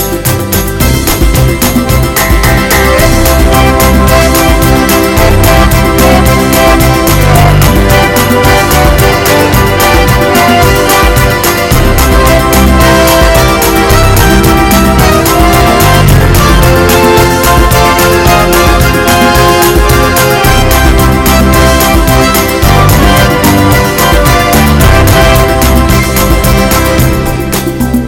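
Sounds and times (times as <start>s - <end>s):
happy sounds: 0.0s - 28.0s.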